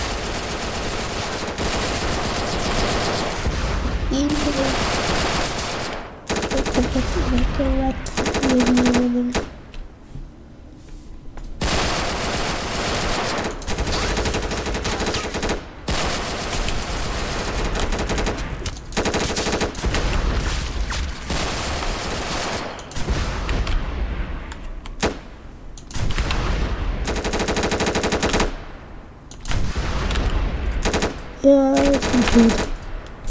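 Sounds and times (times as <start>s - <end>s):
booming shots in a tank battle: 0.0s - 9.6s, 11.6s - 25.4s, 26.0s - 28.9s
heavy gunfire bursts in a tank battle: 0.0s - 9.7s, 11.6s - 24.4s, 26.0s - 28.9s, 29.5s - 33.0s
speech: 4.2s - 5.0s, 7.3s - 9.5s.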